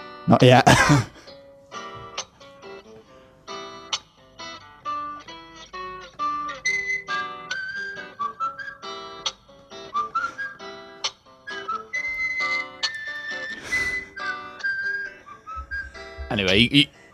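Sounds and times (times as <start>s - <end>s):
speech: 0.3s - 1.1s, 16.6s - 17.0s
person whistling a horror video game theme tune: 6.6s - 9.2s, 9.8s - 17.1s.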